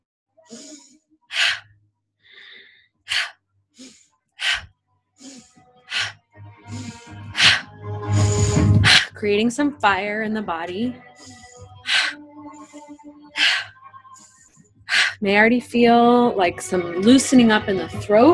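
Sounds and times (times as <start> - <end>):
forceful sharp breaths in through nose during breathing exercise: 0.5 - 1.7, 2.3 - 9.2, 11.0 - 15.2
speech: 9.2 - 11.1, 15.2 - 18.3.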